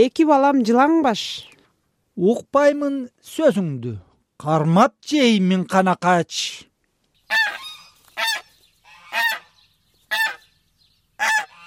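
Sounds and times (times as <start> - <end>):
speech: 0.0 - 1.5, 2.2 - 6.7
geese honking: 7.3 - 10.6, 11.2 - 11.6.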